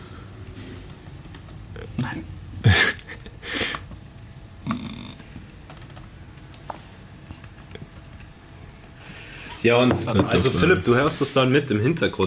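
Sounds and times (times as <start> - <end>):
typing on a computer keyboard: 0.8 - 1.6, 5.6 - 6.7, 7.3 - 8.6
speech: 2.0 - 2.4, 9.6 - 12.2.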